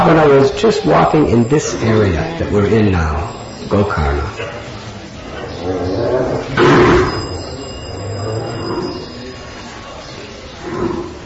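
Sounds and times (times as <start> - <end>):
speech: 0.0 - 4.6
bulls in Gokarna roaring and bellowing: 5.3 - 9.5, 10.6 - 11.2
cows in Gokarna mooing and lowing: 5.6 - 9.2.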